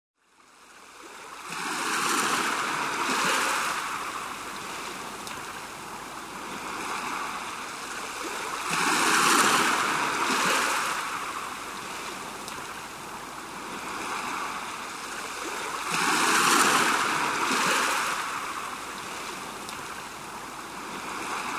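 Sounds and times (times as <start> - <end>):
stream flowing: 0.2 - 21.5
waves: 0.2 - 21.5.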